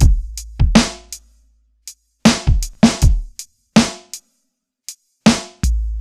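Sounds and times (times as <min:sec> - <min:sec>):
downtempo boom bap drum loop: 0:00.0 - 0:01.3, 0:01.9 - 0:04.3, 0:04.9 - 0:05.9.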